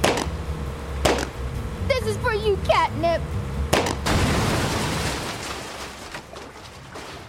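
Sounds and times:
gunfire on a lake: 0.0 - 0.4, 1.0 - 1.4, 3.7 - 4.8
speech: 2.0 - 3.4.

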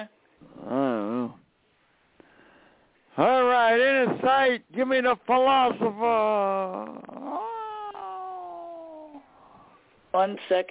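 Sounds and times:
speech: 0.0 - 0.8, 3.2 - 7.2, 10.1 - 10.6
cats meowing: 6.8 - 9.2.

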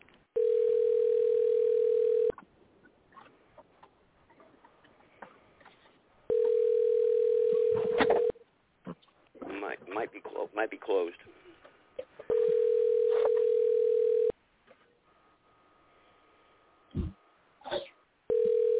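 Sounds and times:
telephone tone while calling a corporate office: 0.4 - 2.4, 6.3 - 8.3, 12.3 - 14.4, 18.3 - 18.7
speech: 10.0 - 11.4.

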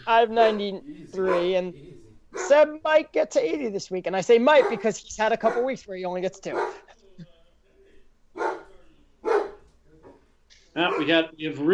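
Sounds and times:
speech: 0.1 - 6.9, 10.8 - 11.7
dog barking: 0.4 - 1.6, 2.4 - 2.6, 4.6 - 5.8, 6.5 - 6.9, 8.4 - 9.6, 10.8 - 11.3
dog yelping: 1.3 - 1.6, 4.6 - 5.7, 6.5 - 6.9, 8.4 - 9.6, 10.8 - 11.2.

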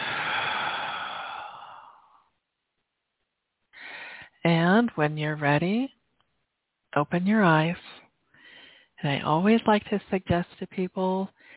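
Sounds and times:
deep breath held and released during a guided relaxation exercise: 0.0 - 2.3, 3.8 - 4.4, 8.3 - 9.0, 11.4 - 11.5
speech: 4.4 - 6.0, 6.9 - 7.8, 9.0 - 11.5.

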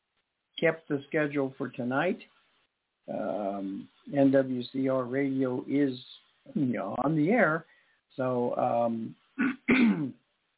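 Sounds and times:
speech: 0.6 - 2.4, 3.1 - 10.2
throat clearing from a person who is still unwell: 9.4 - 10.2.

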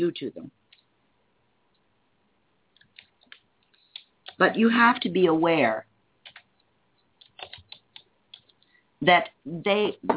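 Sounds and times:
speech: 0.0 - 0.6, 4.4 - 5.9, 9.0 - 10.1
typing on a computer keyboard while writing into a chat room: 2.8 - 5.1, 6.2 - 6.5, 7.2 - 8.6.

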